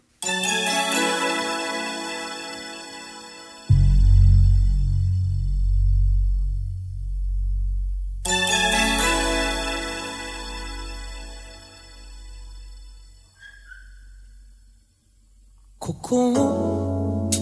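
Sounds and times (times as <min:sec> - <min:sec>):
bright chiming keyboard chords in a live pop concert: 0:00.0 - 0:13.4, 0:16.3 - 0:17.4
deep steady bass line: 0:03.7 - 0:13.1
speech: 0:16.1 - 0:16.6.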